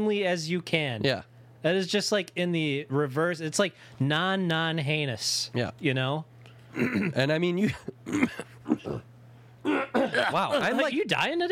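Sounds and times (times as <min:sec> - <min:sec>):
faint steady low hum: 0:00.0 - 0:11.5
speech: 0:00.0 - 0:11.5
throat clearing: 0:06.7 - 0:07.2, 0:08.0 - 0:10.4
coughing: 0:06.7 - 0:10.8.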